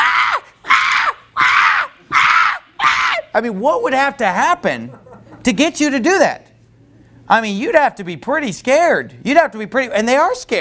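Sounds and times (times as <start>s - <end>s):
person imitating a newborn baby screaming: 0.0s - 3.3s
speech: 3.4s - 6.4s, 7.3s - 10.5s.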